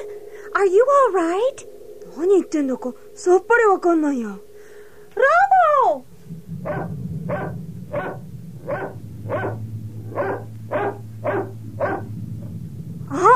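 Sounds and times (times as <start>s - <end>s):
low droning hum: 0.0s - 13.3s
speech: 0.6s - 4.5s
dog barking: 6.6s - 12.1s
dog yelping: 6.7s - 9.6s, 10.2s - 12.1s.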